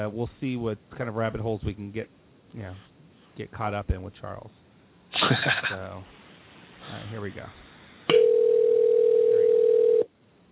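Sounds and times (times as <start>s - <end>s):
speech: 0.0s - 4.6s, 5.2s - 6.2s, 6.9s - 7.6s
telephone ringback tone on outgoing call: 8.1s - 10.1s.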